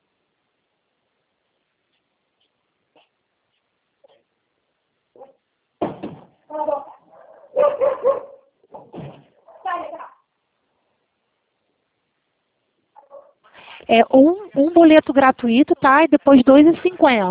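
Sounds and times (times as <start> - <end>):
speech: 6.5 - 6.8, 13.9 - 17.3
dog barking outdoors: 7.0 - 8.6.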